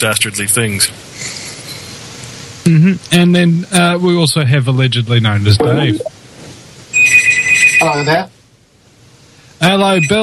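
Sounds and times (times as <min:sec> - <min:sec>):
speech: 0:00.0 - 0:01.3, 0:02.6 - 0:06.1, 0:07.8 - 0:08.3, 0:09.6 - 0:10.2
telephone ringing with a bright trilling electronic tone: 0:07.0 - 0:08.2.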